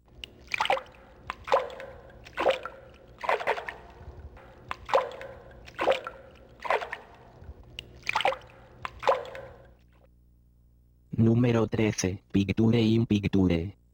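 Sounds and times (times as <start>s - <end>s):
water sloshing and splashing: 0.0s - 10.1s
speech: 11.2s - 13.8s.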